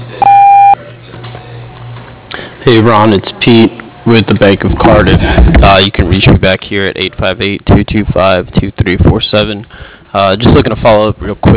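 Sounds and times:
mobile voicemail beep before recording a message: 0.2s - 0.8s
speech: 2.6s - 11.5s.

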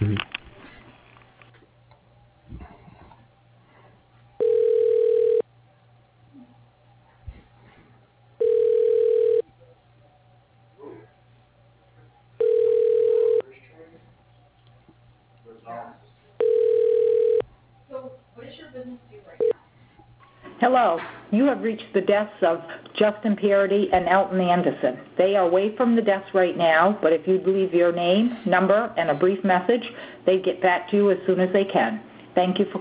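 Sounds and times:
faint phone line hiss: 4.4s - 5.4s, 8.4s - 9.4s
telephone line tone during call transfer to voicemail: 4.4s - 5.4s, 8.4s - 9.4s, 12.4s - 13.4s, 16.4s - 17.4s
speech: 20.7s - 32.7s.

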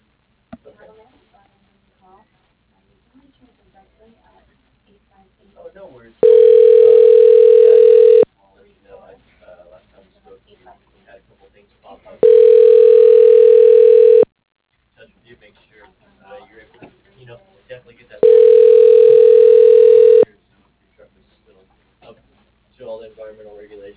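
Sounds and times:
telephone ringing during call transfer: 6.2s - 8.3s, 12.2s - 14.3s, 18.2s - 20.2s.

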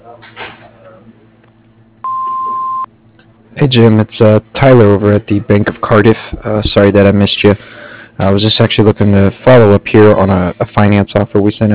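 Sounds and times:
low hum: 0.0s - 11.7s
speech: 0.1s - 1.2s, 3.6s - 11.7s
answering machine beep: 2.0s - 2.9s.

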